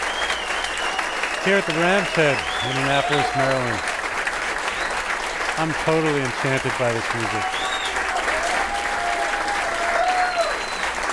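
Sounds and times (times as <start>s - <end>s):
faint whistle from audience: 0.0s - 3.2s, 7.5s - 8.0s, 10.4s - 11.0s
concert audience cheering: 0.0s - 11.1s
concert audience clapping for an encore: 0.0s - 11.1s
speech: 1.4s - 3.9s, 5.6s - 7.6s.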